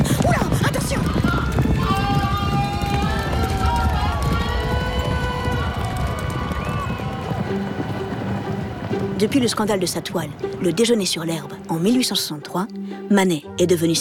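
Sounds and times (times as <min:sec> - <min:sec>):
horses galloping at a horse race: 0:00.0 - 0:12.0
crowd shouting and cheering at a horse race: 0:00.4 - 0:09.4
speech: 0:09.2 - 0:14.0.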